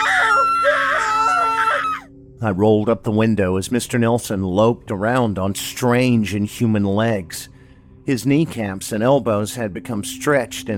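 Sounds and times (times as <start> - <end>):
two people screaming in terror: 0.0 - 2.1
speech: 2.4 - 10.7.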